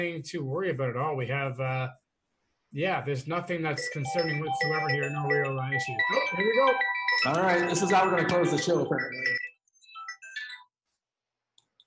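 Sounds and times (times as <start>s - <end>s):
speech: 0.0s - 2.0s, 2.7s - 9.4s
bright electronic phone ringtone for an incoming call: 3.7s - 10.8s.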